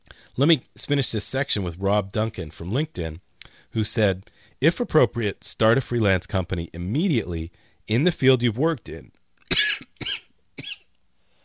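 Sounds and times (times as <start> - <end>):
speech: 0.4 - 9.9
harsh coughs: 9.5 - 10.9
throat-clearing rasp: 9.5 - 10.9.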